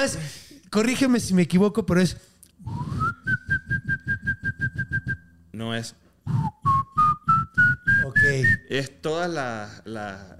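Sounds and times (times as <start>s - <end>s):
speech: 0.0s - 2.8s, 5.6s - 6.0s, 8.1s - 10.3s
person whistling up the scale: 2.6s - 5.3s, 6.3s - 8.7s.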